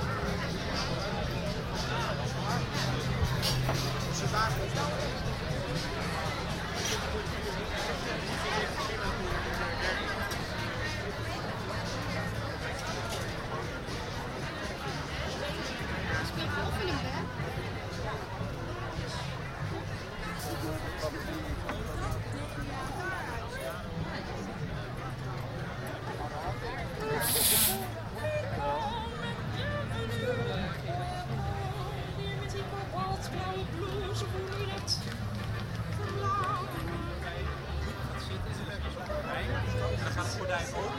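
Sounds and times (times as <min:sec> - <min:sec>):
outdoor crowd babble at a theatre festival in a park: 0:00.0 - 0:40.9.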